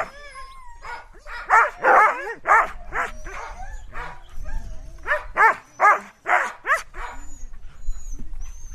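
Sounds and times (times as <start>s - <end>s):
dogs yipping and whining: 0.0s - 8.7s
dogs barking: 0.8s - 4.2s, 5.1s - 7.2s.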